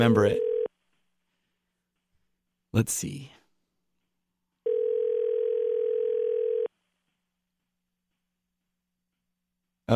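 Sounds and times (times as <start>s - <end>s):
speech: 0.0s - 0.5s, 2.8s - 3.4s
steady electronic telephone ring tone while dialing a listener: 0.0s - 0.7s, 4.6s - 6.7s.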